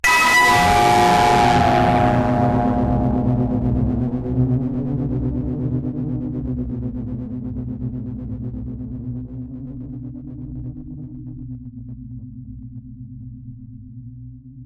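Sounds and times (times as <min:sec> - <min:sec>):
static blast impact: 0:00.0 - 0:06.0.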